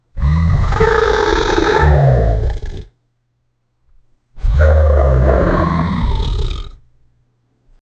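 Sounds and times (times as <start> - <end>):
natural booming tiger roar: 0.2 - 2.9, 4.4 - 6.8.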